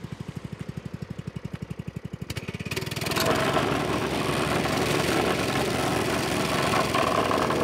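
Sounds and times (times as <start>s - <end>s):
vibrating plate compactor shaking a road patch firm: 2.0s - 7.6s.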